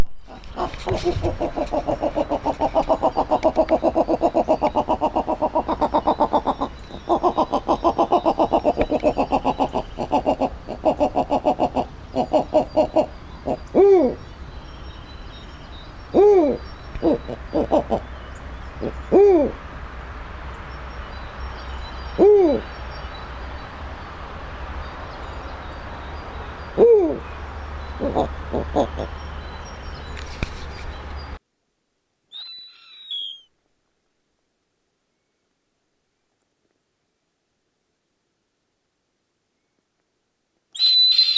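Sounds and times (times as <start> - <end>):
snowy owl calling: 0.2 - 14.8, 15.6 - 19.6, 22.1 - 22.8, 26.7 - 29.2, 32.3 - 33.5, 40.7 - 41.3.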